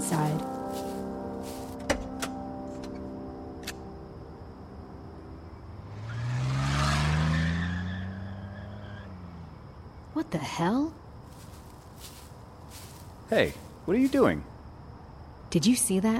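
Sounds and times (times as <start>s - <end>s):
car engine humming: 0.0s - 14.9s
speech: 0.1s - 0.9s, 10.3s - 11.0s, 13.3s - 14.5s, 15.5s - 16.1s
car speeding past: 5.7s - 9.6s.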